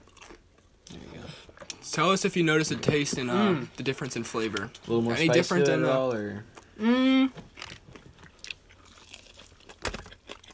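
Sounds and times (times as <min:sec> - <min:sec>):
chewing: 0:00.0 - 0:01.8, 0:07.5 - 0:10.5
speech: 0:01.8 - 0:07.5
crunchy bites into a spicy fried chicken drumstick: 0:07.6 - 0:10.5.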